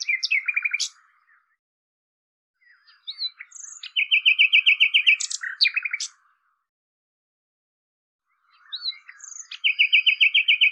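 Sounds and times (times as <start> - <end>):
common nightingale singing: 0.0 - 1.6, 2.6 - 6.6, 8.3 - 10.7.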